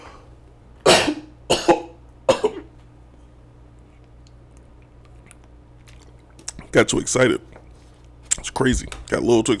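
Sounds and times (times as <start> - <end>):
person coughing: 0.8 - 2.7
speech: 6.8 - 7.6, 8.6 - 9.5.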